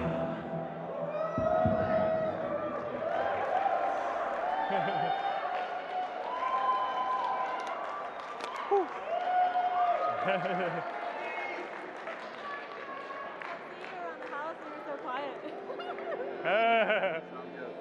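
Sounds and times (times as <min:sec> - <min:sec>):
cheers: 0:00.8 - 0:14.5
crowd clapping: 0:02.4 - 0:16.2
laughter: 0:04.5 - 0:05.6, 0:10.2 - 0:11.3, 0:15.4 - 0:17.6.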